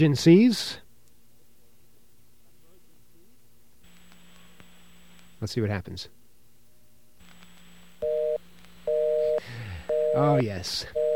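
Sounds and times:
speech: 0:00.0 - 0:00.8, 0:05.4 - 0:06.2, 0:10.1 - 0:11.0
phone line hiss: 0:03.8 - 0:06.1, 0:07.2 - 0:11.1
telephone dial tone: 0:07.3 - 0:11.1.

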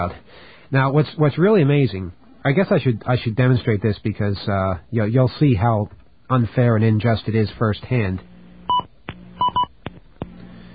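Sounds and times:
speech: 0:00.0 - 0:08.9
telephone keypad beeps while dialing a number: 0:08.7 - 0:09.7.

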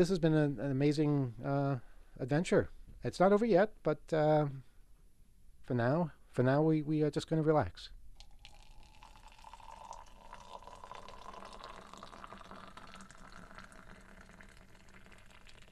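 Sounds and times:
speech: 0:00.0 - 0:04.7, 0:05.7 - 0:08.0
tea pouring into a cup: 0:08.2 - 0:15.7.

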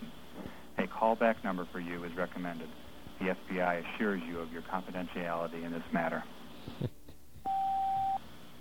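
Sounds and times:
faint hiss: 0:00.0 - 0:08.5
speech: 0:01.0 - 0:07.0
voicemail recording tone beep on a federal tip line: 0:07.5 - 0:08.2.

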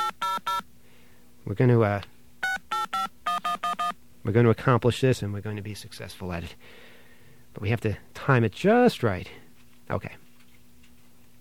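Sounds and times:
telephone touch-tone dialing beeps: 0:00.0 - 0:00.6, 0:02.4 - 0:04.0
speech: 0:01.5 - 0:02.1, 0:04.2 - 0:06.9, 0:07.6 - 0:10.2.

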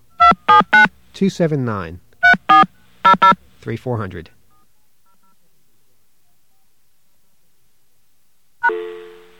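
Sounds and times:
touch-tone keypad dialing a number on a calling-card line: 0:00.2 - 0:00.9, 0:02.2 - 0:03.3
brief tone: 0:08.6 - 0:09.3.

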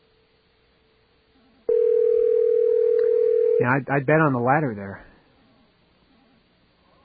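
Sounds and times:
telephone line ringing with a steady electronic tone: 0:01.7 - 0:03.7
speech: 0:03.6 - 0:05.1.

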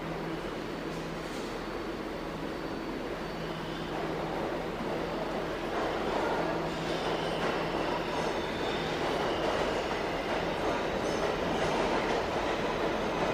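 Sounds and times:
subway train rumbling past on an express track: 0:00.0 - 0:13.3.

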